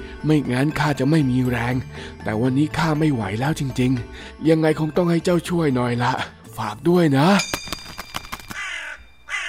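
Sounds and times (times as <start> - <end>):
speech: 0.2 - 7.6
crow cawing: 8.5 - 9.4.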